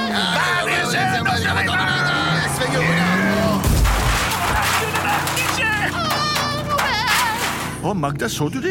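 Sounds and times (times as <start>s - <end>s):
busy street noise in Paris: 0.0s - 8.2s
Mercedes car crashing into an opening car door in Paris: 3.6s - 7.8s
speech: 7.9s - 8.7s.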